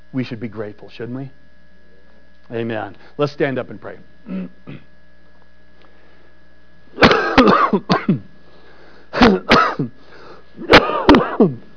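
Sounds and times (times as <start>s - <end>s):
speech: 0.1s - 1.5s, 2.5s - 4.9s, 7.7s - 8.3s, 9.2s - 10.0s, 10.6s - 11.7s
person clearing their throat: 4.3s - 4.9s, 7.0s - 8.3s, 9.2s - 10.0s, 10.6s - 11.7s
person coughing: 4.3s - 4.9s, 7.0s - 8.3s, 9.1s - 10.0s, 10.6s - 11.7s.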